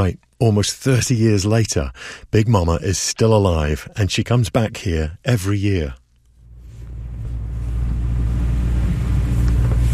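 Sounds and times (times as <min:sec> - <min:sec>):
speech: 0:00.0 - 0:06.0
boat motor droning while heading out to sea: 0:06.5 - 0:09.9.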